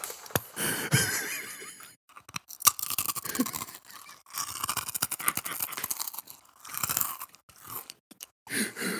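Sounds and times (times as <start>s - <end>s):
laughter: 0.6s - 2.0s
chewing crunchy wasabi kakimochi rice crackers: 1.4s - 8.5s.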